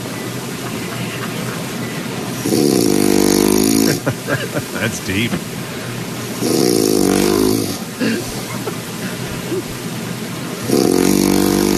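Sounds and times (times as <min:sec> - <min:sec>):
laughter: 0:00.0 - 0:02.4, 0:03.7 - 0:06.1, 0:07.9 - 0:10.0
breathing noise: 0:02.2 - 0:11.7
loud harsh snoring: 0:02.3 - 0:04.1, 0:06.4 - 0:08.4, 0:10.6 - 0:11.7
speech: 0:04.1 - 0:05.8.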